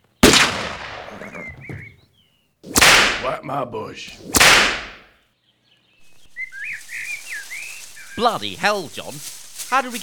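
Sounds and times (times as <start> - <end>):
pump-action shotgun blast while hunting deer: 0.2 - 1.5, 2.7 - 3.3, 4.3 - 5.0
speech: 3.2 - 4.8, 8.2 - 10.0.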